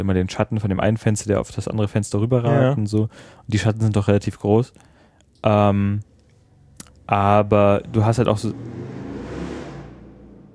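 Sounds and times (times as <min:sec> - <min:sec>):
speech: 0:00.0 - 0:06.1, 0:07.1 - 0:09.1
motorcycle engine revving outside: 0:07.1 - 0:10.5.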